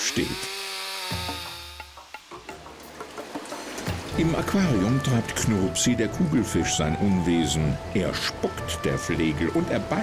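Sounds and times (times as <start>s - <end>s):
chainsaw cutting wood by forestry sawyers: 0.0s - 2.5s
speech: 0.2s - 1.2s, 4.2s - 10.0s.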